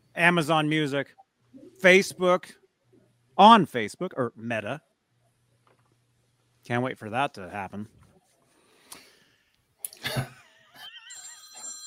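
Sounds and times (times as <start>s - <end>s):
speech: 0.2s - 1.2s, 1.8s - 2.6s, 3.4s - 4.9s, 6.7s - 8.0s
telephone ringing with incoming call: 10.8s - 11.8s.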